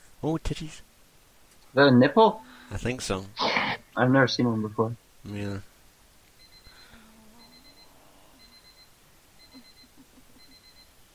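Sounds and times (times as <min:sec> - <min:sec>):
speech: 0:00.2 - 0:00.9, 0:01.7 - 0:03.4, 0:04.0 - 0:05.7
alarm clock beeping with high-pitched electronic bursts: 0:06.4 - 0:11.0.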